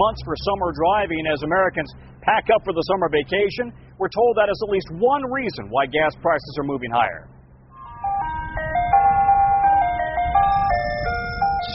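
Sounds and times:
speech: 0:00.0 - 0:07.3
low engine rumble: 0:00.0 - 0:11.7
tinkling ice cream truck jingle of chiming notes: 0:07.7 - 0:11.7.

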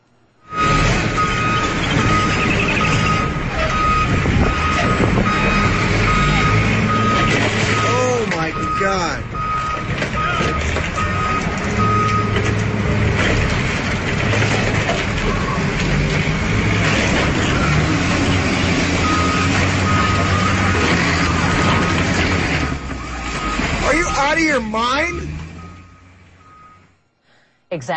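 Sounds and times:
city sanitation truck engine rumbling freeing a snowbound front loader: 0:00.0 - 0:27.9
steady vehicle reversing beep: 0:00.4 - 0:12.4, 0:19.0 - 0:21.5, 0:22.6 - 0:26.9
mechanical grind of heavy vehicles straining outdoors: 0:00.5 - 0:27.2
speech: 0:27.8 - 0:27.9.

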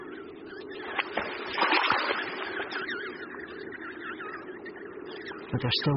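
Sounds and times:
small splash of a down-covered penguin chick dropping into water: 0:00.8 - 0:02.9
churning and sloshing water: 0:00.8 - 0:03.2
sharp water slaps: 0:00.9 - 0:02.8
speech: 0:05.5 - 0:05.9.

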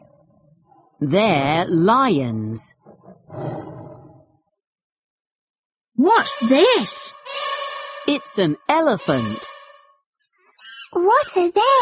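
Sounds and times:
speech: 0:01.0 - 0:02.8, 0:06.0 - 0:07.4, 0:08.1 - 0:09.5, 0:10.9 - 0:11.8
tiger roaring: 0:02.8 - 0:04.3.

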